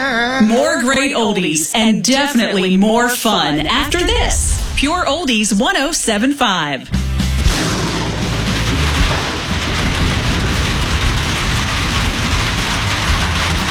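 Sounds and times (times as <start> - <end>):
speech: 0.4 - 7.0
deep thunder rumbling: 3.2 - 13.6
heavy rain: 3.6 - 5.6, 7.4 - 13.6.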